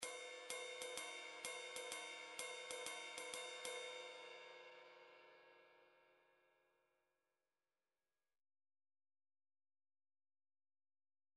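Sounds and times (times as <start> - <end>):
ride cymbal: 0.0 - 5.6.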